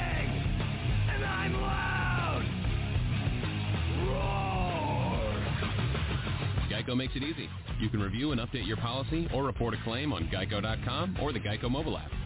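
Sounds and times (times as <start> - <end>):
man yelling and screaming in harsh bursts: 0.0 - 0.3, 1.1 - 2.5, 3.9 - 5.6
distorted heavy metal guitars: 0.0 - 12.2
speech: 7.0 - 12.2.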